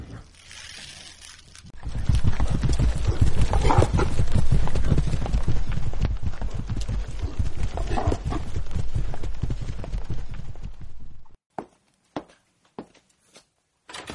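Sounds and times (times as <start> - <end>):
ridden horse hooves clip-clopping: 1.7 - 11.4.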